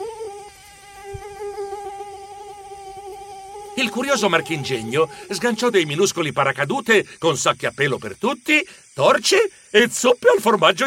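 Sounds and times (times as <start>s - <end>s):
drone hovering with high-pitched mechanical buzz: 0.0s - 6.6s
speech: 3.8s - 10.8s.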